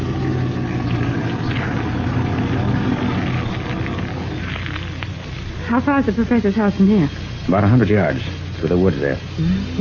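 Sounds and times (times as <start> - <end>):
car engine running: 0.0 - 6.5
speech: 5.7 - 9.8.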